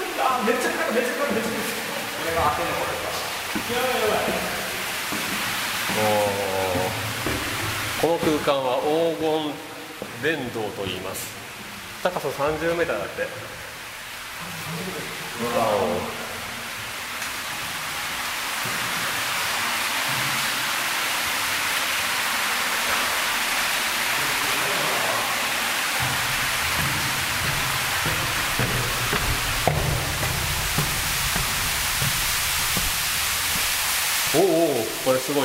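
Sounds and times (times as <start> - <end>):
powerful waterfall roaring inside a limestone cave: 0.0 - 35.4
speech: 0.3 - 3.0, 3.6 - 4.5, 6.0 - 6.4, 8.0 - 11.4, 12.0 - 13.6, 14.4 - 16.2, 34.4 - 35.4
faint low rumbles: 26.0 - 34.0.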